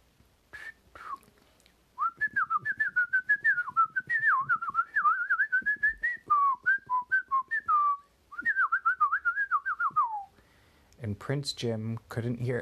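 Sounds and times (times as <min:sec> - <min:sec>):
person whistling an imitation of birds tweeting: 0:00.6 - 0:01.3, 0:02.0 - 0:10.4
speech: 0:11.2 - 0:12.6.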